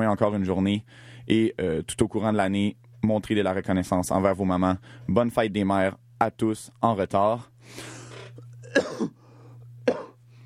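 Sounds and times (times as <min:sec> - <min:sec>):
steady low electrical hum: 0:00.0 - 0:10.4
speech: 0:00.1 - 0:08.0, 0:08.7 - 0:09.2
person coughing: 0:08.0 - 0:09.2, 0:09.8 - 0:10.2.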